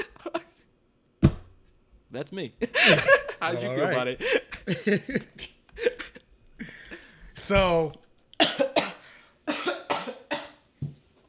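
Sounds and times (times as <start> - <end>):
speech: 2.1 - 5.5, 7.5 - 8.0
laughter: 2.6 - 7.1
person clearing throat: 8.4 - 10.6.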